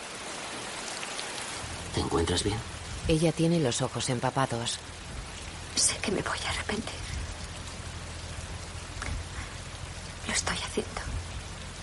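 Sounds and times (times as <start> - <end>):
steady rain pattering on a glass pane: 0.0 - 11.8
speech: 2.0 - 5.0, 5.8 - 7.0, 10.4 - 11.0.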